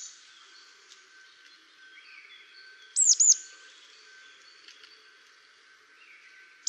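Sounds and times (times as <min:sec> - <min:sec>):
faint background bird notes: 0:00.0 - 0:06.6
marsh tit calls: 0:03.0 - 0:03.5.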